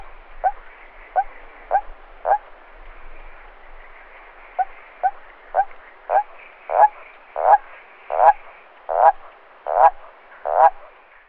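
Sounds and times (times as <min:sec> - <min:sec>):
common toad Bufo bufo croaking: 0:00.0 - 0:02.5, 0:04.6 - 0:11.0.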